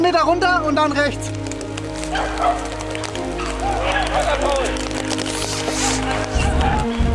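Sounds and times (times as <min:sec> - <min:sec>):
speech: 0:00.2 - 0:01.4, 0:02.1 - 0:02.8
hunting dogs barking and yelping during a hunt: 0:02.0 - 0:04.9, 0:05.6 - 0:07.0.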